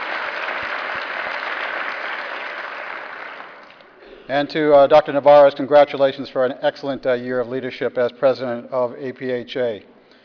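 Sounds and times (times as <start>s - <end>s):
large audience applause: 0.0s - 3.8s
speech: 4.3s - 9.9s.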